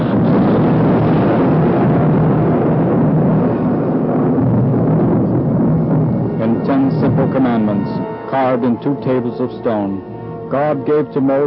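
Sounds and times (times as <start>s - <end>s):
rolling thunder: 0.0s - 8.3s
speech: 8.4s - 11.4s.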